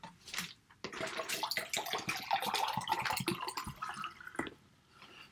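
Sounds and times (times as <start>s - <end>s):
water dripping: 0.4s - 4.6s
water running from a tap into a cup: 0.8s - 4.6s.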